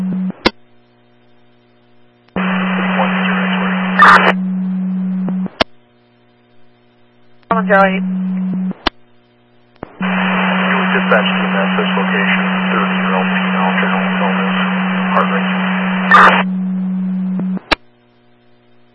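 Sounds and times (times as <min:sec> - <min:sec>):
steady low hum: 0:00.0 - 0:18.9
sharp radio click: 0:02.3 - 0:04.4, 0:09.8 - 0:16.5
narrow crackly radio static: 0:02.4 - 0:05.6, 0:07.5 - 0:08.9, 0:09.8 - 0:17.8
speech: 0:07.7 - 0:08.2, 0:11.1 - 0:12.6.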